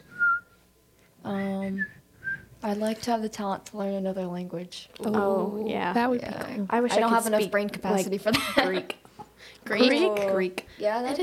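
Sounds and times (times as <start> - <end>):
person whistling: 0.0 - 0.6, 1.6 - 2.5
speech: 2.6 - 11.2.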